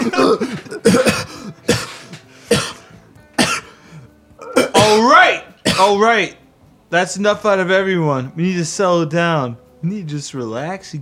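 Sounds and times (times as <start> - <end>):
harsh raspy coughing after a bong hit: 0.0 - 3.7, 4.4 - 5.0, 5.6 - 6.0
speech: 0.1 - 1.2, 5.8 - 11.0
strained breathing with rough throaty sounds: 1.2 - 4.3.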